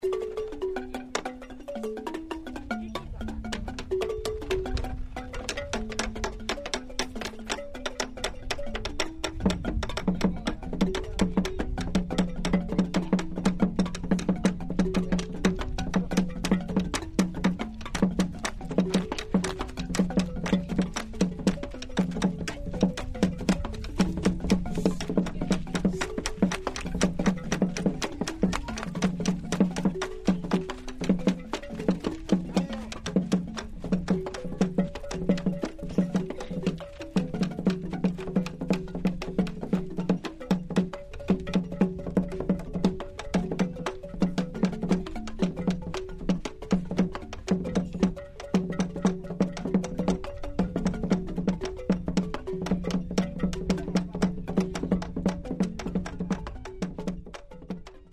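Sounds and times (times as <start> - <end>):
gyil: 0.0 - 58.1
music: 0.0 - 58.1.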